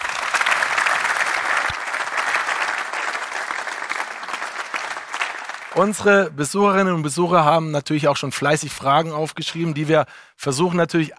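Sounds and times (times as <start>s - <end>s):
applause from a sizable audience: 0.0s - 6.2s
speech: 5.8s - 11.1s.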